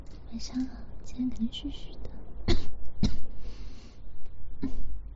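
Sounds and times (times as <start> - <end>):
speech: 0.3 - 2.2
harsh raspy coughs: 2.5 - 3.4, 4.6 - 5.0.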